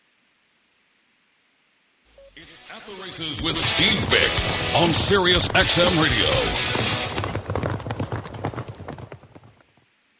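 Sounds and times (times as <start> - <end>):
speech: 2.3 - 6.9
horse hooves thundering in a rapid gallop: 3.2 - 10.1.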